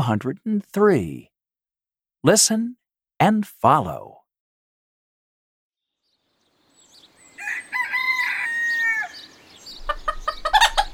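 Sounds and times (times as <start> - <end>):
speech: 0.0 - 1.3, 2.2 - 4.2
chicken crowing: 7.3 - 9.3, 9.9 - 10.9
chicken clucking: 9.7 - 10.9.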